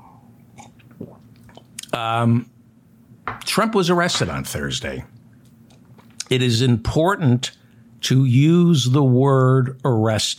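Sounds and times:
sipping water: 0:00.5 - 0:02.0
speech: 0:02.0 - 0:02.6, 0:03.6 - 0:05.2, 0:06.3 - 0:10.3.

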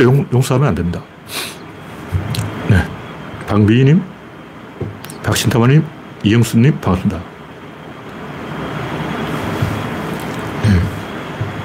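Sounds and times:
speech: 0:00.0 - 0:01.6, 0:03.5 - 0:04.1, 0:04.8 - 0:07.3
wind moving through a ventilation fan: 0:00.0 - 0:11.6.

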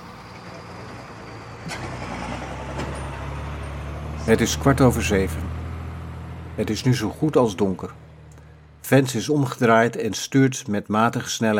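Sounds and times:
car engine rumbling as the vehicle pulls off: 0:00.0 - 0:10.0
speech: 0:04.3 - 0:05.5, 0:06.6 - 0:08.0, 0:08.9 - 0:11.5.

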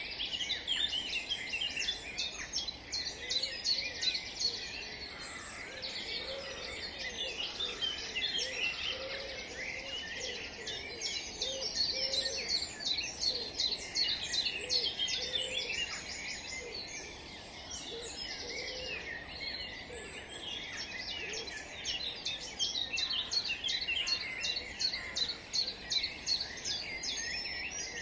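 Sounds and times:
dawn chorus of many birds singing in a park: 0:00.0 - 0:28.0.

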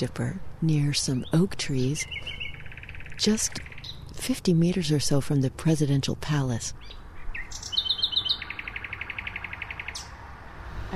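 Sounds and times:
speech: 0:00.0 - 0:02.4, 0:03.2 - 0:07.7
nightingale singing near oak trees in the Tiergarten in Berlin: 0:00.7 - 0:04.9, 0:06.7 - 0:10.2.

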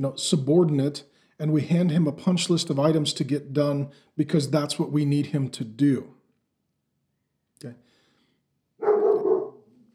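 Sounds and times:
speech: 0:00.0 - 0:06.2, 0:07.6 - 0:07.8
dog barking: 0:08.8 - 0:09.7.

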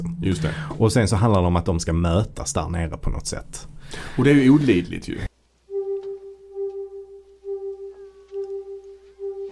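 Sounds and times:
speech: 0:00.0 - 0:05.3
slowing electronic beeps from a hypnosis machine: 0:05.7 - 0:09.5.

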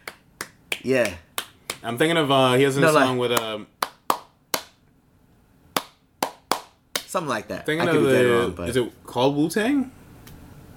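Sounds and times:
hand claps imitating a hip-hop beat: 0:00.0 - 0:01.9, 0:03.3 - 0:04.8, 0:05.8 - 0:07.2
speech: 0:00.8 - 0:01.2, 0:01.8 - 0:03.7, 0:07.1 - 0:10.0.

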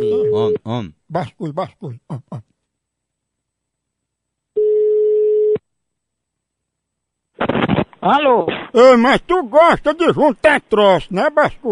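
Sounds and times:
telephone line tone while placing a call: 0:00.0 - 0:00.6, 0:04.6 - 0:05.6
speech: 0:00.4 - 0:02.5, 0:07.6 - 0:11.7.

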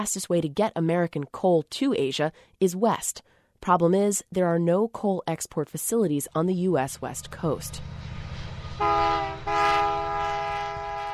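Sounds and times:
speech: 0:00.0 - 0:08.0, 0:08.8 - 0:09.8
coal train rumbling past: 0:06.6 - 0:11.1
coal train horn blaring: 0:08.8 - 0:11.1.

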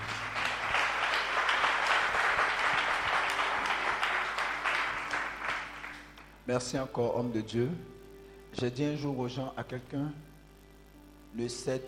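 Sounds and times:
large crowd clapping: 0:00.0 - 0:06.4
speech: 0:06.5 - 0:08.0, 0:08.6 - 0:10.3, 0:11.3 - 0:11.8.

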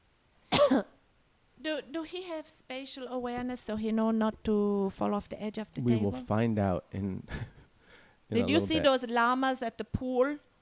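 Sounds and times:
short throaty cough: 0:00.5 - 0:01.0
speech: 0:00.7 - 0:00.9, 0:01.6 - 0:07.6, 0:08.3 - 0:10.5.

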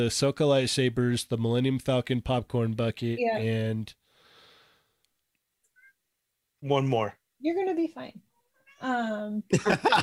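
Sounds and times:
speech: 0:00.0 - 0:04.0, 0:06.6 - 0:10.0
cat meowing like a spoken word: 0:08.5 - 0:09.1
laughter: 0:09.5 - 0:10.0.

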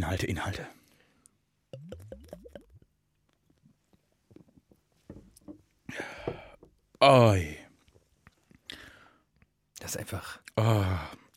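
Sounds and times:
speech: 0:00.0 - 0:00.8, 0:07.0 - 0:07.6, 0:09.9 - 0:11.2
person gulping and swallowing while drinking beer: 0:01.7 - 0:03.6
sharp breathy satisfied exhale: 0:08.7 - 0:09.2.

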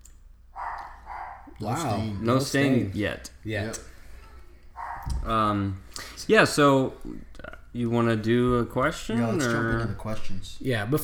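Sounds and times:
dogs barking: 0:00.5 - 0:02.8, 0:04.3 - 0:05.5
speech: 0:01.6 - 0:03.9, 0:05.2 - 0:11.0.

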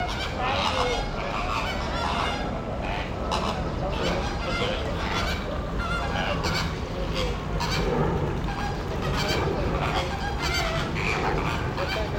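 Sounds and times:
flock of flamingos honking in Kowloon Park: 0:00.0 - 0:12.1.

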